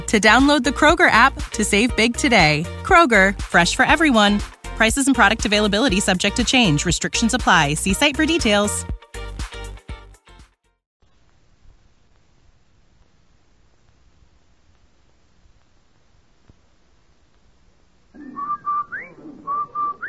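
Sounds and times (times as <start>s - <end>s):
speech: 0.1s - 9.0s
faint hiss: 11.0s - 19.5s
whistled advertising jingle with sliding bird-like notes: 18.2s - 20.0s.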